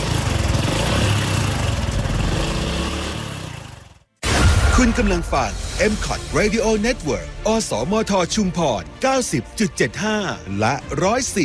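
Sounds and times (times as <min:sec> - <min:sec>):
motorcycle engine running with a low-pitched pulsing throb: 0:00.0 - 0:04.0
speech: 0:04.8 - 0:11.4.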